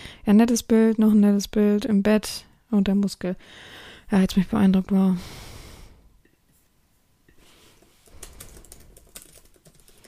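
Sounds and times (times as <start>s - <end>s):
speech: 0.3s - 5.5s
typing on a computer keyboard: 7.8s - 10.0s.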